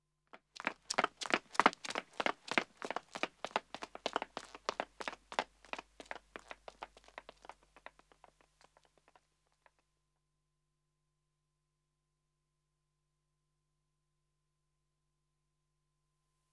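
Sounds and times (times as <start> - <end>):
man and woman running footsteps on pavement: 0.3 - 9.2.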